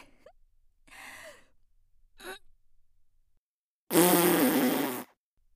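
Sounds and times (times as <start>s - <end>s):
middle-aged woman farting: 3.9s - 5.2s.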